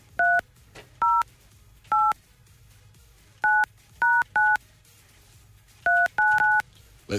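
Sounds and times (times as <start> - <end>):
phone number dialed on a keypad with dual-tone beeps: 0.2 - 0.4, 1.0 - 1.2, 1.9 - 2.2, 3.4 - 4.6, 5.9 - 6.6.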